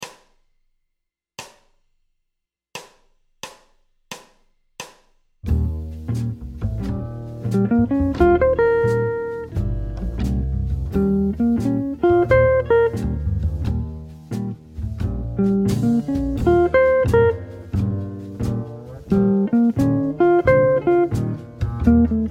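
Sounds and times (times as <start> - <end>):
jazz guitar playback: 5.5 - 22.2.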